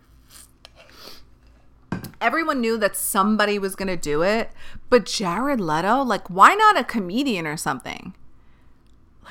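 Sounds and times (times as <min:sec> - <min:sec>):
person sipping coffee: 0:00.2 - 0:01.3
speech: 0:02.2 - 0:08.2.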